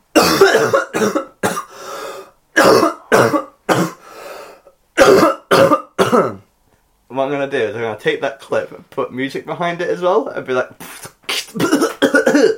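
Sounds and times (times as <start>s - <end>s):
person coughing violently: 0.1s - 4.3s, 5.0s - 6.5s, 11.1s - 12.5s
speech: 0.6s - 1.3s, 7.3s - 10.9s
wheezing: 1.6s - 3.1s, 3.9s - 4.8s.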